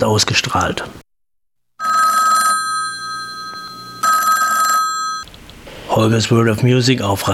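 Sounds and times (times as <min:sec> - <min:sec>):
speech: 0:00.0 - 0:01.0, 0:06.0 - 0:07.3
telephone bell ringing with a bright rattling metallic trill: 0:01.8 - 0:05.3.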